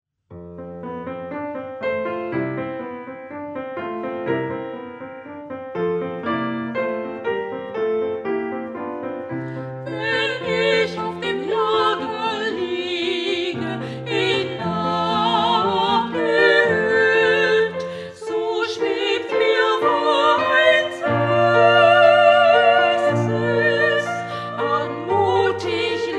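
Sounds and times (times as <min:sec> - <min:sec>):
evening song: 0:01.3 - 0:26.1.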